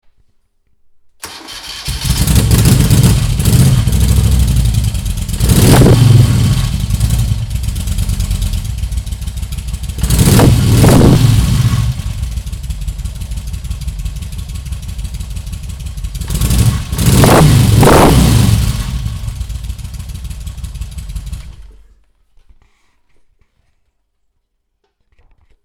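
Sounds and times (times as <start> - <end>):
Moto Guzzi 850 T3 motorcycle engine: 1.2 - 21.9.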